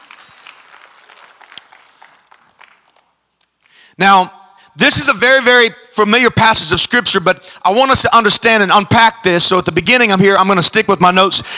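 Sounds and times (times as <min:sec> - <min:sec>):
audience clapping hands: 0:00.0 - 0:03.2
speech: 0:04.0 - 0:11.5.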